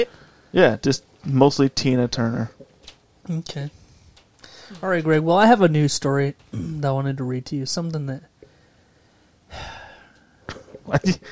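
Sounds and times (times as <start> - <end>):
speech: 0.0 - 2.6, 3.3 - 3.8, 4.7 - 8.3, 9.5 - 9.8, 10.9 - 11.3
deep breath drawn before reading aloud: 3.8 - 4.8, 8.4 - 10.5.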